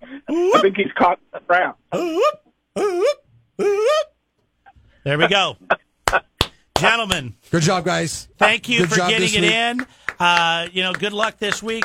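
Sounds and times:
speech: 0.3 - 2.9, 5.0 - 11.8
person imitating a wolf howl with yips: 2.0 - 4.1.

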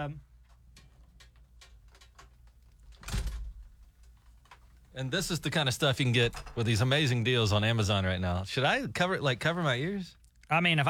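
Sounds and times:
speech: 0.0 - 0.3, 5.0 - 10.8
studio door swinging shut: 2.9 - 3.8, 6.1 - 7.0.

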